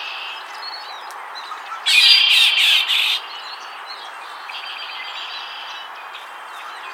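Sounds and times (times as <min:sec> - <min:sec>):
Agelaius phoeniceus Red-winged Blackbird giving buzzy rattling trills: 0:01.8 - 0:03.3.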